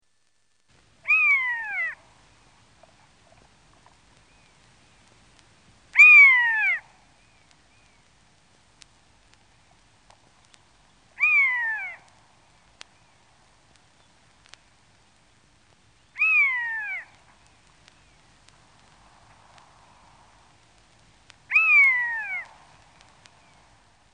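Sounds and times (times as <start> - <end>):
steppe buzzard calling: 1.0 - 2.1, 5.9 - 6.9, 11.2 - 12.1, 16.2 - 17.2, 21.5 - 22.6.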